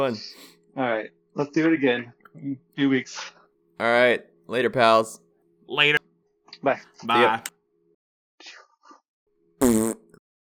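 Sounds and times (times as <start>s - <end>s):
speech: 0.0s - 7.5s
mouth fart blown into a microphone: 9.6s - 10.2s.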